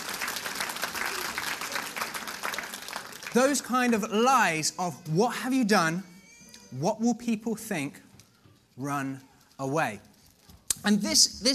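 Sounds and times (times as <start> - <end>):
audience applauding: 0.0 - 4.3
speech: 3.3 - 6.1, 6.7 - 8.1, 8.8 - 10.1, 10.8 - 11.5.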